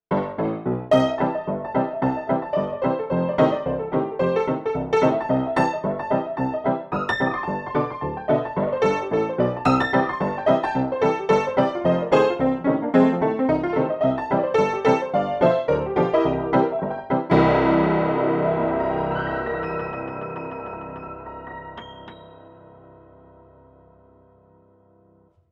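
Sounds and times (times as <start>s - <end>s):
old Far West piano: 0.1s - 25.5s.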